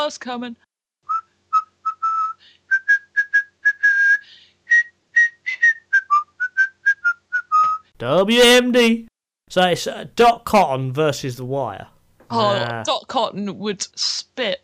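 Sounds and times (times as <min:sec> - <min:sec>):
speech: 0:00.0 - 0:00.7, 0:08.0 - 0:14.6
person whistling a tune while walking down the street: 0:01.1 - 0:07.9.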